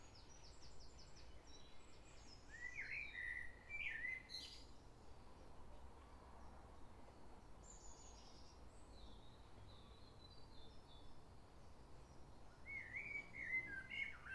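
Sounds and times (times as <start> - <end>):
common blackbird song in London England: 0.7 - 4.7, 12.6 - 14.3.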